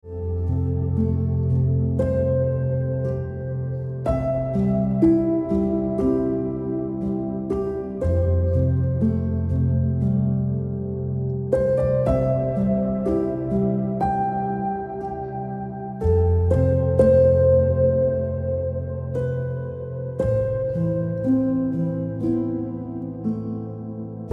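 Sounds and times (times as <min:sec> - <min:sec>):
piano ringtone music: 0:00.0 - 0:24.3.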